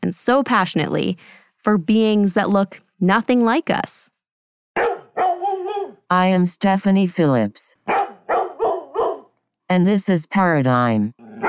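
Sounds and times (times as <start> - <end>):
speech: 0.0 - 4.1, 6.1 - 7.8, 9.7 - 11.4
dog barking with a whining wavering tone: 4.8 - 6.0, 7.9 - 9.4, 11.2 - 11.4.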